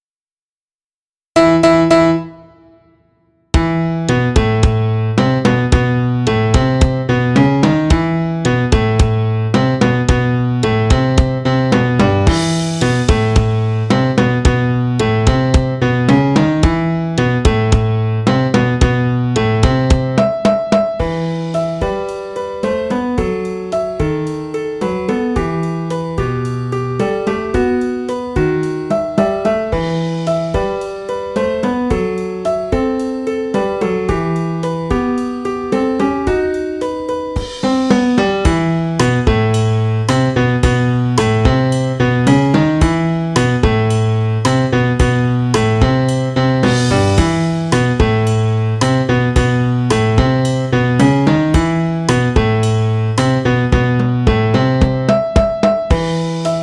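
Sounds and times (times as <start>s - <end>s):
cha cha piano: 1.4s - 56.6s
drum kit playing cha cha: 3.6s - 56.6s.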